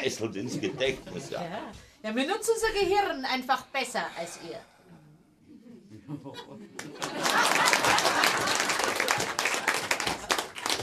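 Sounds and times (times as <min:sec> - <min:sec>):
speech: 0:00.0 - 0:04.7, 0:06.1 - 0:07.7
laughter: 0:00.4 - 0:01.8, 0:05.5 - 0:10.2
audience applause from a sizable crowd: 0:06.8 - 0:10.8.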